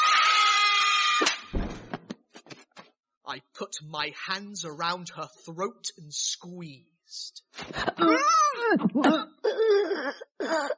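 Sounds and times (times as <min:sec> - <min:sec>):
old woman's piercing blood-curdling scream: 0:00.0 - 0:01.4
heavy thud: 0:01.5 - 0:02.0
speech: 0:03.3 - 0:10.7.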